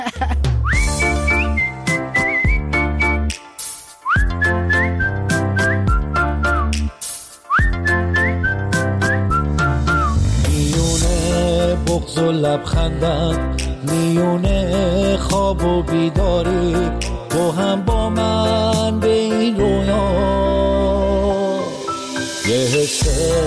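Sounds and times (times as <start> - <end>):
steady instrumental backing music: 0.2 - 23.4
person whistling a bright lilting tune: 0.6 - 10.2
speech: 12.2 - 21.0.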